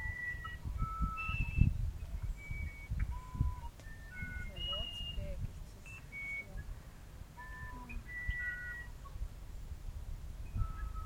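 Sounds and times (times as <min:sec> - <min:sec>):
musician wren whistled song: 0:00.0 - 0:06.8, 0:07.4 - 0:09.2, 0:10.4 - 0:11.0.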